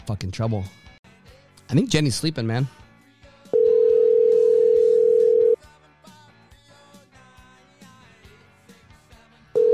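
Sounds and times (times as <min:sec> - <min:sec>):
speech: 0:00.1 - 0:00.9, 0:01.7 - 0:02.8
electronic ringback tone from a phone call: 0:03.5 - 0:05.6, 0:09.6 - 0:09.7.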